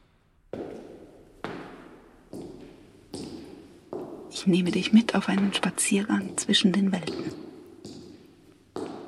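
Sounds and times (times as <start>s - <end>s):
heavy footsteps climbing stairs in a cultural production centre: 0.6s - 5.7s, 7.1s - 9.0s
speech: 4.4s - 7.4s.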